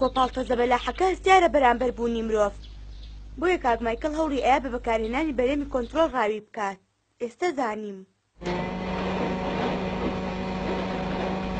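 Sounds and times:
speech: 0.0 - 2.7, 3.4 - 8.7
quiet boat motor running steadily: 8.4 - 11.5.

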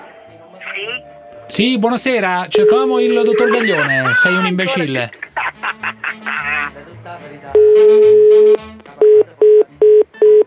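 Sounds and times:
speech: 0.9 - 5.2
laughter: 3.3 - 6.9
telephone busy tone after the other party hangs up: 7.6 - 10.4.

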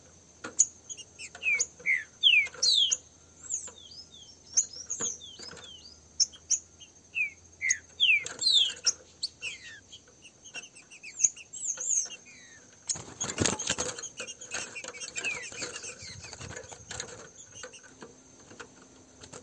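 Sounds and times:
free-flying pair of green-winged saltators whistling in a song dispute: 0.6 - 18.0.

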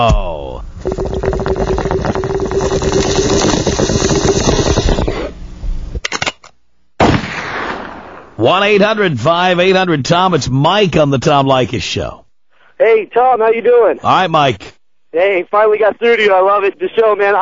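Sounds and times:
bong hit bubbling gurgle sound effect: 0.1 - 5.4
gunshot sound effect: 7.0 - 8.4
speech: 8.5 - 12.2, 12.8 - 17.4.

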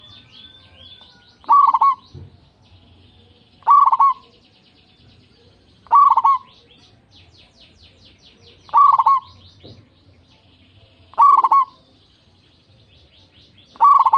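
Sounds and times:
local zebra dove singing burbling coo phrases: 0.0 - 2.1, 3.6 - 4.4, 5.8 - 6.6, 8.7 - 9.4, 11.1 - 11.8, 13.7 - 14.1.

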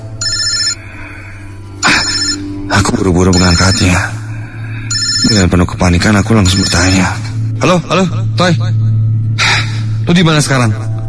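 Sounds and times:
mobile phone ringing with an incoming call: 0.0 - 0.9, 1.8 - 4.1, 4.9 - 7.1
speech: 2.7 - 4.2, 5.2 - 8.8, 10.1 - 10.9.

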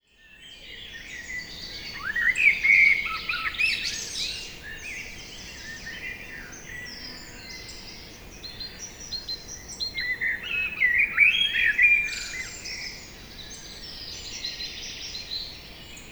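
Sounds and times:
common blackbird singing fluty notes at Lac de Barterand in France: 0.1 - 16.1
dense high twittering from several other birds in an evening chorus: 0.2 - 16.1.

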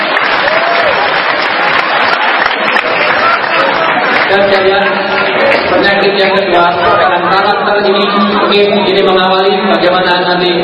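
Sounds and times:
audience applause: 0.0 - 7.1
speech: 4.4 - 4.9, 5.7 - 10.6.

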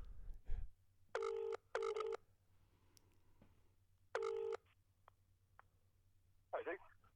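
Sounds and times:
outgoing phone call ringing tone through handset: 1.2 - 2.2, 4.2 - 4.6.

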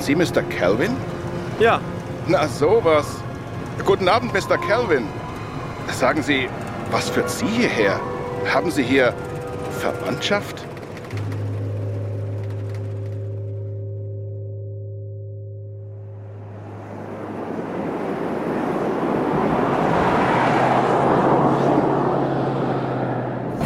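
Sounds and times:
speech: 0.0 - 3.2, 3.8 - 5.2, 5.9 - 11.4
low sustained droning tone: 0.0 - 19.7
stormy wind and waves at night: 16.5 - 23.6.

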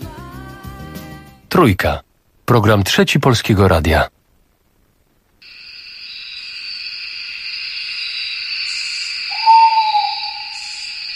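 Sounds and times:
speech: 1.6 - 4.1
night bird's brief clear whistled note: 8.0 - 11.1
night bird giving a raspy high hissing screech: 9.3 - 11.1.

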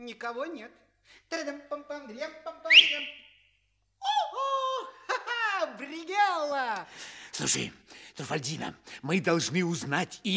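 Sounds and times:
speech: 0.0 - 3.3, 5.6 - 10.3
person whistling from under an umbrella in a staged scene: 2.7 - 3.4
laughter: 4.0 - 6.2.

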